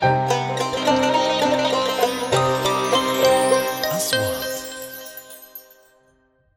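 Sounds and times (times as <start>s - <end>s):
theme music soundtrack: 0.1s - 5.6s.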